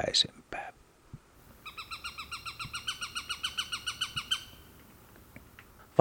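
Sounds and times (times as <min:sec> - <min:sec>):
Eurasian sparrowhawk chattering harsh kek notes: 0:01.6 - 0:04.8
faint clicks: 0:04.7 - 0:05.8.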